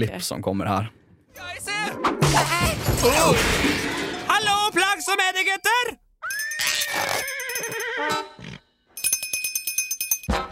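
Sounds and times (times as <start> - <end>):
speech: 0.0 - 3.9, 5.1 - 6.0, 6.9 - 8.4
cowbell worn by a person clanging: 6.3 - 7.8, 9.0 - 10.5.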